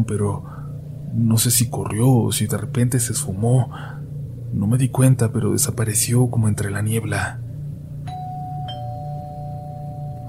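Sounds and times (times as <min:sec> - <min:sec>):
speech: 0:00.0 - 0:00.5, 0:01.1 - 0:07.5
steady low hum: 0:00.0 - 0:10.2
doorbell ringing with a two-tone ding-dong: 0:08.1 - 0:10.2.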